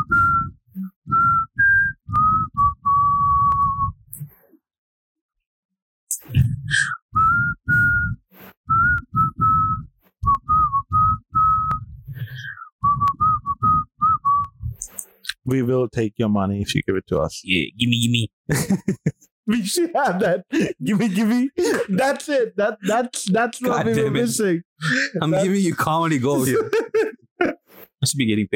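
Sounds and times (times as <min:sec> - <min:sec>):
person whistling a tune: 0:00.0 - 0:04.0, 0:06.7 - 0:14.7
speech: 0:15.5 - 0:27.2, 0:28.0 - 0:28.5
laughter: 0:18.5 - 0:27.6.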